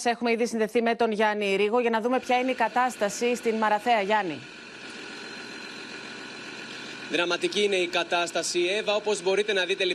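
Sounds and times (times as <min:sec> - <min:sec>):
speech: 0:00.0 - 0:04.6, 0:07.1 - 0:09.9
tractor engine running in a flooded village in Karditsa Greece: 0:02.2 - 0:09.9.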